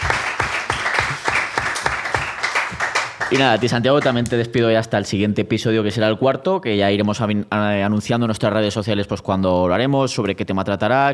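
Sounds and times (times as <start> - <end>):
applause from a small group: 0.0 - 4.5
speech: 3.3 - 11.1.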